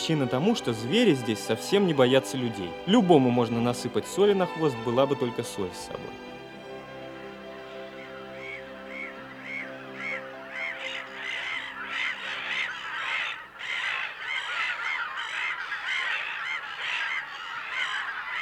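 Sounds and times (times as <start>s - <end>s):
speech: 0.0s - 6.2s
flock of geese honking on an uninhabited island: 0.0s - 18.3s
flock of ducks quacking on an uninhabited island: 5.8s - 18.3s.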